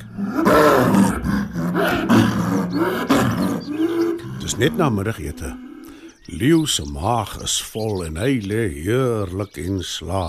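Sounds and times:
leopard growling deeply: 0.0s - 6.2s
speech: 4.5s - 5.7s, 6.3s - 10.2s.

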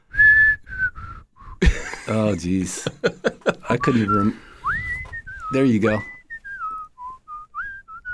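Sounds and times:
person whistling a TV theme tune: 0.0s - 1.6s, 3.7s - 8.1s
laughter: 1.6s - 4.4s
speech: 1.6s - 4.5s, 5.5s - 6.1s.

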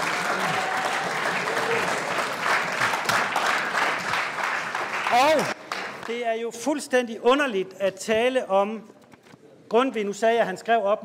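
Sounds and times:
audience clapping: 0.0s - 6.2s
speech: 5.2s - 9.0s, 9.7s - 11.0s.

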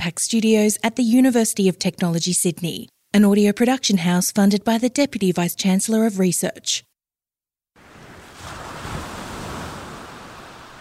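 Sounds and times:
speech: 0.0s - 6.9s
ocean waves: 7.8s - 10.8s.

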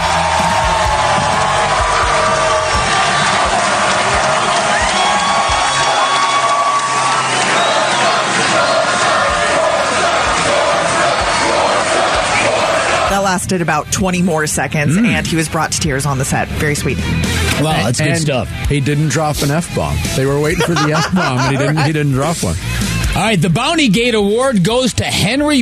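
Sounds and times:
stadium crowd chanting in celebration: 0.0s - 13.2s
speech: 13.4s - 25.5s
laughter: 20.4s - 22.4s.

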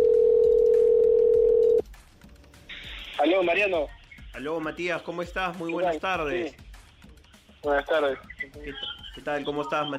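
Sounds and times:
telephone dial tone as a call is placed: 0.0s - 1.8s
speech: 3.3s - 6.6s, 7.6s - 9.9s.

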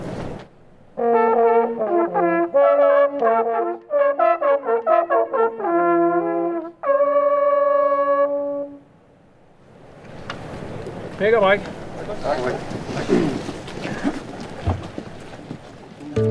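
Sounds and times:
hunting horns blowing a fanfare at a hunt gathering: 1.0s - 8.8s
speech: 11.2s - 13.3s.

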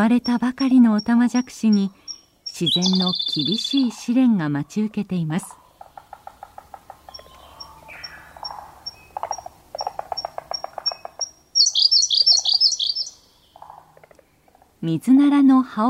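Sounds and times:
Siberian blue robin singing at Hirafushi-numa pond in Fukushima Prefecture Japan: 0.0s - 4.0s, 6.9s - 14.5s
speech: 0.0s - 5.6s, 14.8s - 15.8s
low pulsing croak-like calls: 0.0s - 14.9s.

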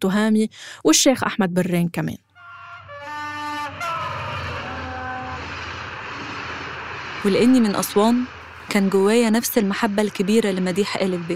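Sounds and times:
speech: 0.0s - 2.2s, 7.2s - 11.3s
train pulling away from Cairo toward Aswan: 2.8s - 11.3s.

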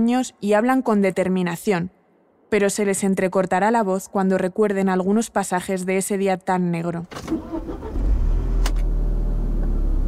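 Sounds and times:
speech: 0.0s - 7.6s
car engine turning over and rumbling: 7.1s - 10.0s.

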